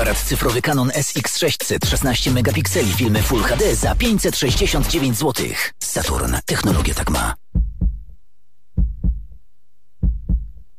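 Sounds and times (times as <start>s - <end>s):
speech: 0.1s - 7.4s
human heartbeat: 7.5s - 8.1s, 8.8s - 9.4s, 10.0s - 10.6s.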